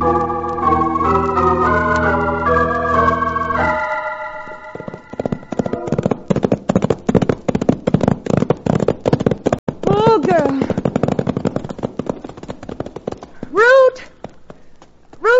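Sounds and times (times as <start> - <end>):
brief musical passage: 0.0 - 5.8
horses' hooves clip-clopping as riders head back to a ranch: 0.0 - 15.3.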